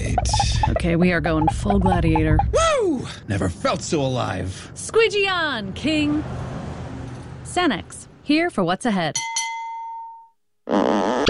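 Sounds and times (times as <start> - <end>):
speech: 0.8 - 6.5, 7.6 - 9.3
short clear ding tone: 9.2 - 10.4
loud buzzy raspy fart sound effect: 10.7 - 11.2.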